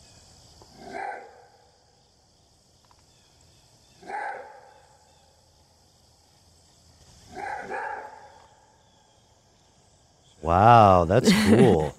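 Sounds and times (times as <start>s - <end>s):
wild canid roar bark: 0.7s - 1.6s, 4.0s - 4.7s, 7.3s - 8.4s
speech: 10.5s - 11.9s
laughter: 10.8s - 11.9s.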